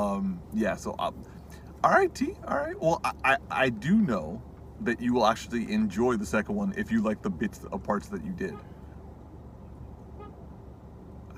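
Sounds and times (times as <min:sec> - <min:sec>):
speech: 0:00.0 - 0:08.7
road traffic rumble: 0:00.0 - 0:11.3
car horn honking nearby: 0:10.1 - 0:10.4.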